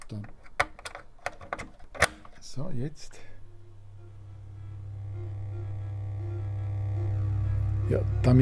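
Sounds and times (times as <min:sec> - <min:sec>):
speech: 0:00.1 - 0:00.4, 0:02.6 - 0:03.3, 0:07.9 - 0:08.4
amplified electrical hum with buzzing low harmonics from a light sensor: 0:02.2 - 0:08.4
faint pulses from a sensor picking up flickering candlelight: 0:03.1 - 0:08.4.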